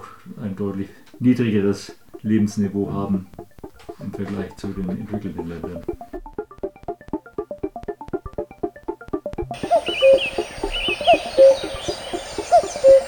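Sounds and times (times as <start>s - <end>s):
speech: 0.2s - 6.2s
lark warbling song: 9.6s - 13.0s
owl-like calls: 9.6s - 13.0s.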